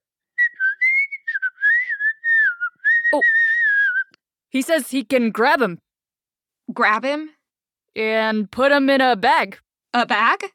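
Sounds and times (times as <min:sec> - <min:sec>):
person whistling chirpy warbling notes in imitation of a bird: 0:00.3 - 0:04.2
speech: 0:03.1 - 0:03.4, 0:04.5 - 0:05.9, 0:06.8 - 0:07.4, 0:08.0 - 0:10.5.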